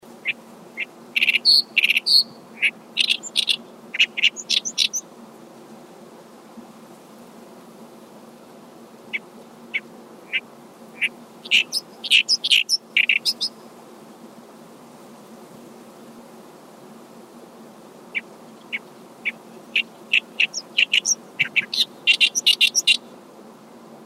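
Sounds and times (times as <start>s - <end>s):
oyosikiri bird calling: 0.2s - 5.0s, 9.1s - 13.6s, 18.6s - 23.1s.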